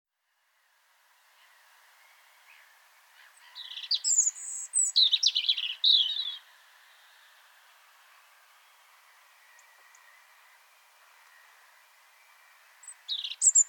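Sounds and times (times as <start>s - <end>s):
European robin Erithacus rubecula singing: 1.3s - 13.6s.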